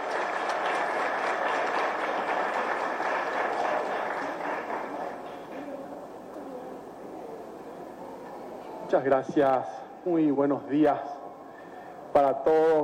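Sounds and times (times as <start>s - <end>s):
audience applause for the minister: 0.0s - 5.9s
speech: 8.9s - 11.1s, 12.2s - 12.8s.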